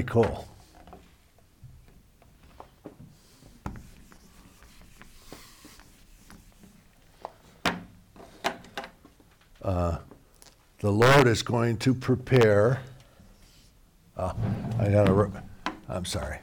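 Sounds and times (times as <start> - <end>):
speech: 0.0 - 0.5, 9.6 - 10.1, 10.8 - 12.9, 14.2 - 16.4
marker or chalk writing on a board: 3.1 - 6.8.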